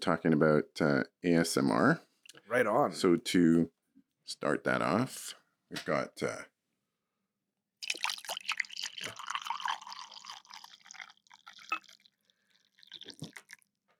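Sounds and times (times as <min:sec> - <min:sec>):
speech: 0:00.0 - 0:06.5
coffee pouring into a cup: 0:07.8 - 0:13.8.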